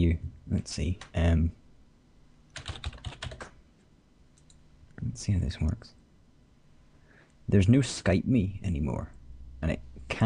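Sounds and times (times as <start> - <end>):
speech: 0.0 - 1.6, 5.1 - 6.0, 7.5 - 10.2
typing on a computer keyboard into a contact search: 2.5 - 3.5, 4.4 - 4.6.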